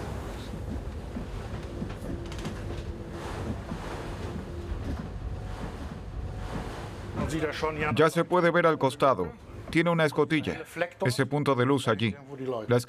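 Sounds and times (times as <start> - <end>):
ocean waves: 0.0 - 8.5
speech: 7.3 - 12.8.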